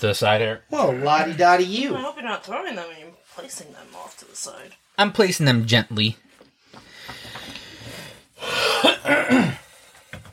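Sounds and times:
speech: 0.0s - 6.2s, 8.4s - 9.6s
harsh raspy coughing: 8.4s - 9.7s.

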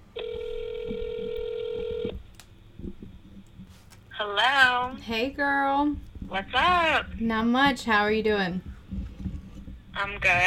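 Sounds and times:
faint noise: 0.0s - 10.4s
steady electronic phone ringback tone: 0.2s - 2.1s
speech: 4.2s - 8.7s, 10.0s - 10.4s.

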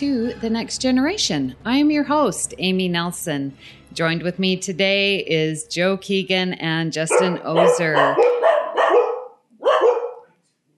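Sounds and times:
speech: 0.0s - 8.4s
dogs barking: 7.1s - 10.4s.

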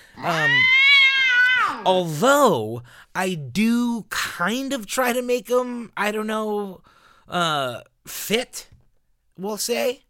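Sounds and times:
speech: 0.2s - 0.8s, 1.8s - 8.7s, 9.4s - 10.0s
cat meow sound effect: 0.2s - 1.9s.

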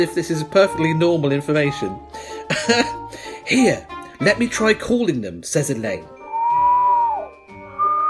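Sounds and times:
speech: 0.0s - 6.2s
person whistling a long low note: 6.2s - 8.0s.

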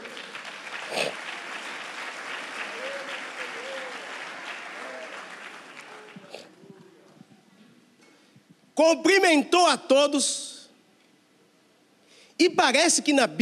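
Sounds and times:
audience applauding: 0.0s - 6.9s
voices calling out: 2.5s - 6.9s
speech: 8.8s - 10.5s, 12.4s - 13.3s.

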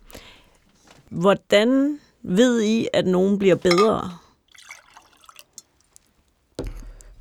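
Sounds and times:
speech: 1.1s - 4.2s
glass being set down: 3.7s - 4.1s
person sipping water: 3.7s - 5.6s.

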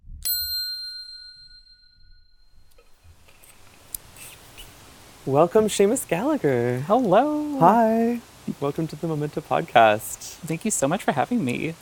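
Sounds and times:
bell ringing: 0.2s - 2.9s
faint noise: 2.5s - 11.7s
speech: 5.2s - 11.7s.

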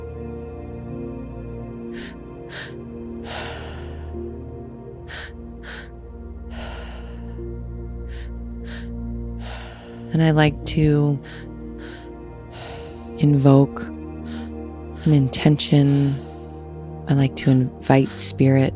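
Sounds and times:
sustained low musical drone: 0.0s - 18.7s
slow deep rhythmic breathing: 1.8s - 13.2s, 14.0s - 17.0s
speech: 10.1s - 11.5s, 13.2s - 14.0s, 15.0s - 16.3s, 17.1s - 18.7s.

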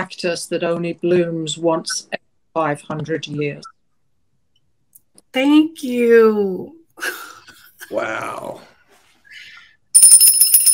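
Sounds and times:
speech: 0.1s - 3.7s, 5.3s - 7.3s, 7.9s - 8.7s
small hand bell ringing rapidly: 10.0s - 10.7s.

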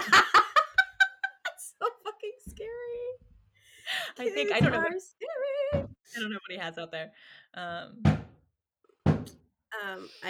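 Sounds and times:
laughter: 0.0s - 2.2s, 4.0s - 5.0s
speech: 4.2s - 8.2s, 9.8s - 10.2s
head thumping against a door: 8.1s - 8.4s, 9.0s - 9.3s.

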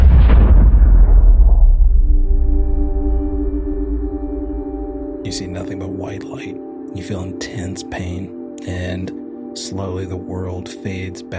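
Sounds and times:
missile rocket exploding: 0.0s - 3.1s
high ringing tone: 2.2s - 6.9s
speech: 5.3s - 11.3s.

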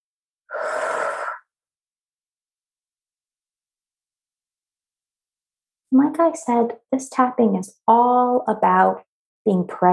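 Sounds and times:
big breath in and out in a guided breathing exercise: 0.5s - 1.6s
speech: 5.9s - 9.9s.

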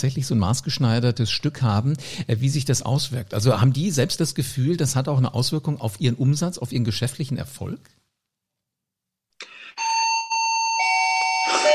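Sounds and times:
speech: 0.0s - 8.0s
electronic doorbell chiming: 9.8s - 11.7s.

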